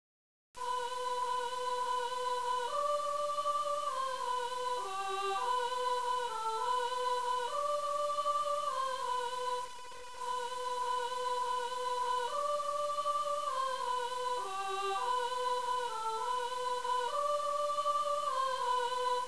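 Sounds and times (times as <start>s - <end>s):
sopranos singing: 0.6s - 19.2s.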